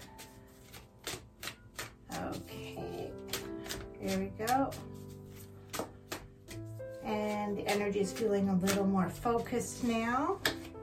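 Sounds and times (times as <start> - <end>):
faint music: 0.0 - 10.8
tarot deck being shuffled for a six-card reading: 0.0 - 10.8
speech: 4.0 - 4.9, 7.5 - 10.5.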